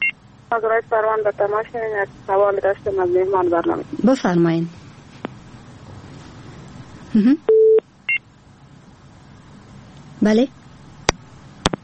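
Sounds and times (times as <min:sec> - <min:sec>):
low hum: 0:00.0 - 0:11.8
speech: 0:00.5 - 0:04.8, 0:07.1 - 0:07.5, 0:10.2 - 0:10.6
telephone busy tone after a caller's line was cut off: 0:07.5 - 0:07.8.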